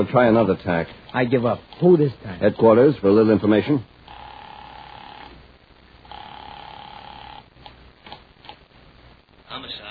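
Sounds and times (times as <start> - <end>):
speech: 0.0 - 3.9
telephone ringback tones over a muffled line: 4.1 - 5.3, 6.1 - 7.4.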